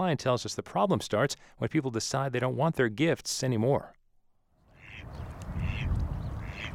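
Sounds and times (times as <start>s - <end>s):
speech: 0.0s - 4.0s
mallard ducks quacking on a lake: 4.7s - 6.7s.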